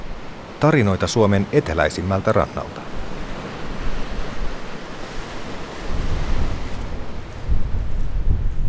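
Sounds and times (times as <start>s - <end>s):
waves washing and surging: 0.0s - 8.6s
speech: 0.6s - 2.9s
steady wind buffeting the microphone on an open shore: 3.0s - 8.6s.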